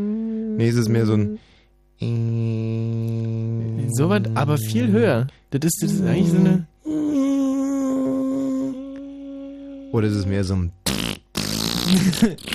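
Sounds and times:
voice imitating old TV test-card tone: 0.0 - 1.4, 2.0 - 10.5
speech: 0.0 - 6.7, 9.9 - 11.2, 11.9 - 12.5.

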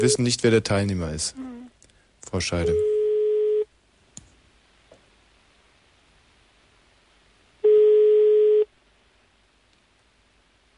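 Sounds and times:
speech: 0.0 - 1.5, 2.2 - 2.9
telephone ringing tone as a call connects: 2.6 - 3.7, 7.6 - 8.7.

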